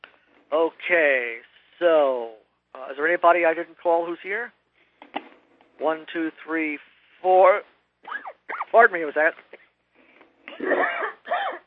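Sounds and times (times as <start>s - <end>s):
speech: 0.5s - 4.6s, 5.8s - 7.7s, 8.7s - 9.5s, 10.6s - 11.0s
person coughing during a council meeting: 10.5s - 11.6s.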